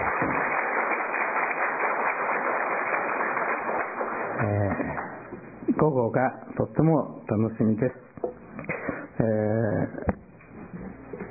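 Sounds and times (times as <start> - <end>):
audience applauding in a room: 0.0 - 5.3
speech: 4.4 - 5.1, 5.8 - 8.1, 9.2 - 10.0.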